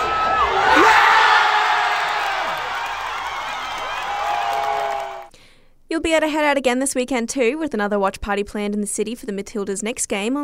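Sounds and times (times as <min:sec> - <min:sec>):
large crowd cheering after goal: 0:00.0 - 0:05.3
whoops and shouts: 0:00.0 - 0:05.3
speech: 0:06.0 - 0:10.4.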